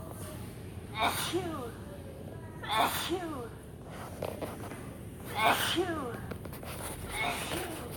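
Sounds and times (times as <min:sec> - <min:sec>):
noisy indoor background at a STEM center: 0:00.0 - 0:07.9
recorded child's voice from interactive health and hygiene exhibit pretend sneezing: 0:00.9 - 0:01.7, 0:02.6 - 0:03.4, 0:05.3 - 0:06.1.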